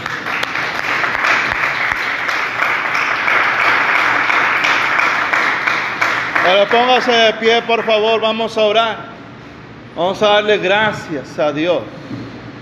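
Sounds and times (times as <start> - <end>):
audience applauding: 0.0 - 8.1
speech: 6.5 - 9.1, 10.0 - 12.0.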